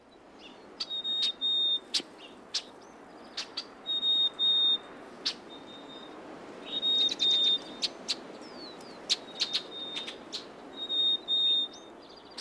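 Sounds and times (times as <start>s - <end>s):
steady background hiss: 0.0s - 12.3s
Black-capped Chickadee whistled song: 0.8s - 2.0s, 3.8s - 12.3s.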